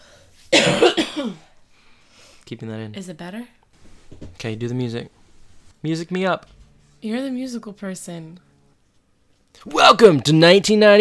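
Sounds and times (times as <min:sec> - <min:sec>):
woman coughing: 0:00.5 - 0:01.5
speech: 0:02.5 - 0:03.6, 0:04.2 - 0:05.2, 0:05.8 - 0:08.5, 0:09.6 - 0:10.9.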